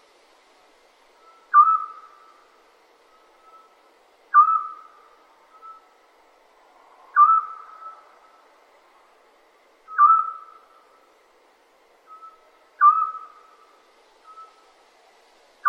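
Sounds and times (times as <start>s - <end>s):
scops owl calls: 1.2s - 6.0s, 7.1s - 8.5s, 9.8s - 11.1s, 12.0s - 14.7s.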